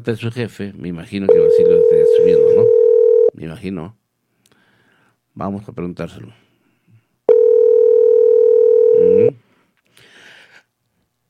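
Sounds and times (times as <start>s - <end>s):
speech: 0.0s - 4.0s, 5.4s - 6.4s
telephone ringback tone during an outgoing call: 1.3s - 3.3s, 7.3s - 9.3s.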